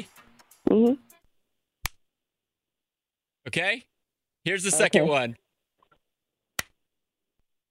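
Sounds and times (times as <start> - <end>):
speech: 0.7 - 1.1, 3.4 - 5.4
hand slapping a bare shoulder: 1.8 - 2.0, 6.6 - 6.8.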